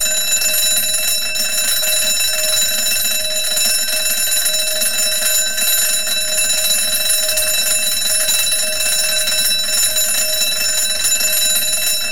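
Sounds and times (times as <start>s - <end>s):
alarm bell ringing: 0.0s - 12.1s.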